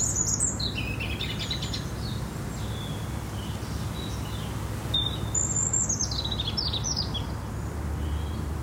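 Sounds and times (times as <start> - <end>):
European robin singing in a garden: 0.0 - 8.5.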